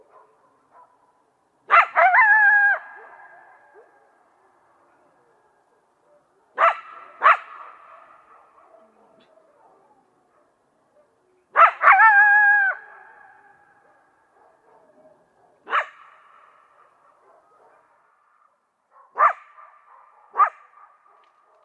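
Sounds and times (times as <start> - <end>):
coyote barking and howling: 1.7 - 4.0, 6.6 - 7.9, 11.6 - 13.9, 20.3 - 20.8.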